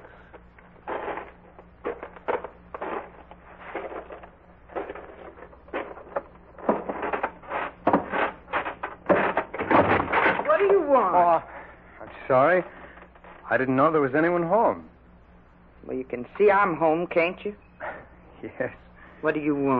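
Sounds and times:
footsteps on creaking wooden porch stairs of a farmhouse: 0.8 - 10.9
speech: 11.0 - 11.5, 12.2 - 12.8, 13.5 - 14.9, 15.9 - 17.6, 18.4 - 19.7.

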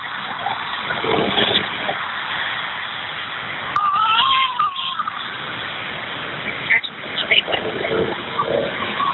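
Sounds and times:
road noise from a moving car in traffic: 0.0 - 9.1
baby boy crying over a phone line: 3.8 - 5.2.

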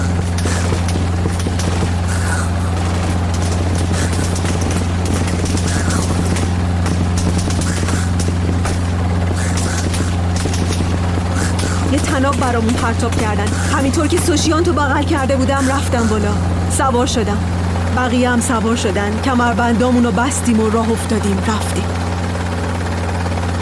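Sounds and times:
gunfire bursts: 0.0 - 14.4
helicopter rotor drone overhead: 0.0 - 23.6
speech: 12.3 - 22.0.

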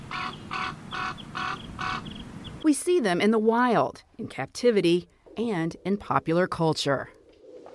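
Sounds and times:
raven giving harsh throaty caws: 0.1 - 2.1
speech: 2.6 - 7.2.

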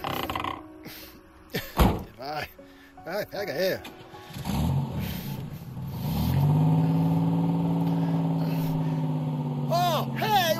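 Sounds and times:
speech: 2.2 - 4.5
car engine revving and accelerating: 4.3 - 10.5.

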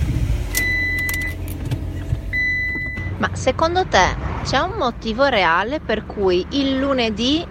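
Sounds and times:
car engine cranking and failing to start: 0.0 - 7.4
car dashboard chime: 2.3 - 3.3
speech: 3.2 - 7.4.

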